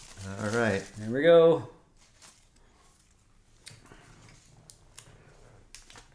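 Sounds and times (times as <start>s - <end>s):
paper question slips shaken in a hat: 0.0s - 1.2s
speech: 0.2s - 1.7s.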